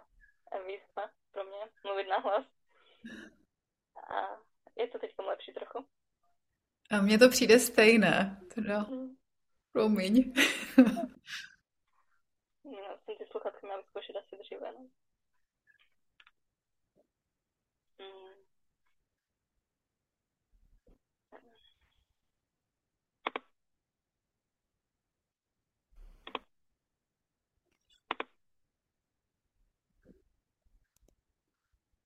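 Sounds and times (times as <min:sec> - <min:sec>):
speech: 0:00.7 - 0:03.4, 0:04.1 - 0:06.0, 0:06.9 - 0:09.2, 0:09.8 - 0:11.5, 0:12.7 - 0:15.0
computer mouse or keyboard clicks: 0:23.2 - 0:23.5, 0:26.2 - 0:26.5, 0:27.8 - 0:28.4.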